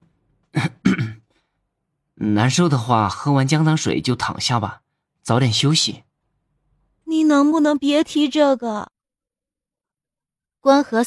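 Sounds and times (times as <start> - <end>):
man clearing his throat: 0.5 - 1.4
speech: 2.2 - 6.1, 7.1 - 8.9, 10.6 - 11.0.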